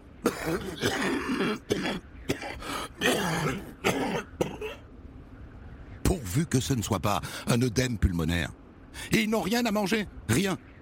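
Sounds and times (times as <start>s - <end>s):
man coughing in harsh rasping bursts at an abandoned expedition campsite: 0.2s - 4.8s
speech: 0.4s - 4.8s, 6.1s - 10.7s.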